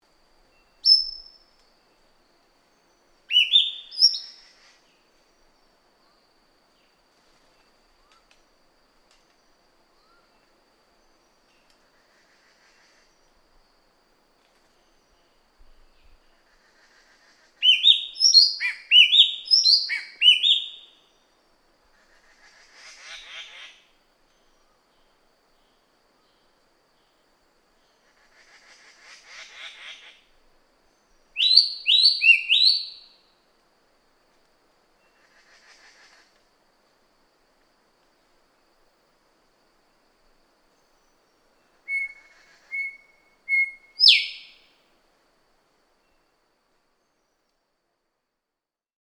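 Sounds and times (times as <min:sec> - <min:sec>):
Cissa thalassina bird calling: 0:03.3 - 0:04.4, 0:17.6 - 0:21.0, 0:31.4 - 0:33.2, 0:41.8 - 0:44.6.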